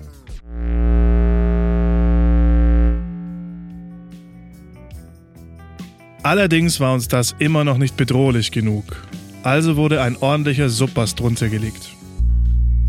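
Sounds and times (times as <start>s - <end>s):
synth tone distorted by Parabolic Shaper effect in Massive synthesizer: 0.4s - 4.7s
speech: 6.3s - 12.0s.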